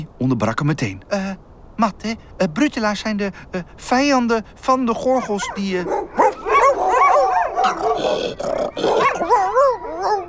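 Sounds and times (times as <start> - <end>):
speech: 0.0 - 6.3, 7.6 - 9.6
grey-white huskies barking: 4.9 - 10.2.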